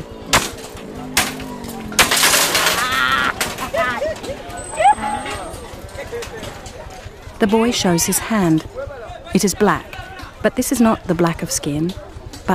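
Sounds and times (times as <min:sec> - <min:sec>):
children smashing old computer screens on mud strewn with glass: 0:00.3 - 0:03.9
laughter: 0:01.5 - 0:08.6
speech: 0:07.4 - 0:12.5.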